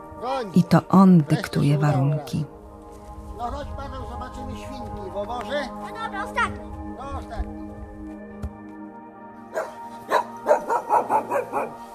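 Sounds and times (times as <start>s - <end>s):
speech: 0.2s - 2.5s, 3.4s - 7.8s
dog barking: 9.5s - 11.8s.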